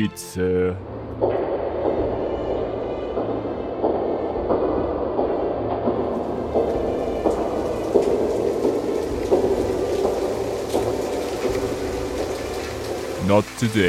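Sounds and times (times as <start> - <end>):
speech: 0.0 - 1.5, 13.3 - 13.8
rain falling: 0.8 - 13.8.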